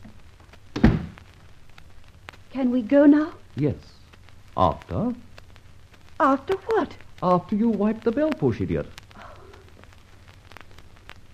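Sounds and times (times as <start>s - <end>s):
door shutting with a dull low thunk: 0.8s - 1.2s
speech: 2.5s - 4.0s, 4.6s - 5.3s, 6.2s - 9.0s.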